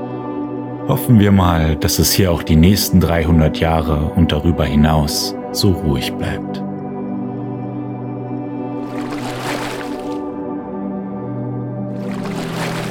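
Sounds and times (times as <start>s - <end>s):
speech: 0.9s - 6.7s
oar strokes splashing on calm lake water while rowing a boat: 8.8s - 10.3s, 11.9s - 12.8s.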